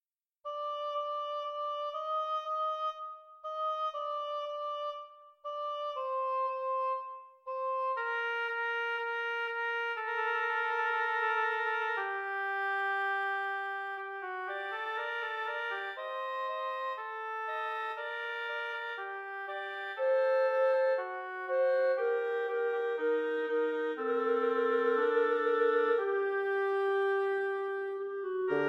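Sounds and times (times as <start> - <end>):
clarinet: 0.4 - 28.6
bassoon: 0.5 - 28.6
oboe: 0.5 - 28.6.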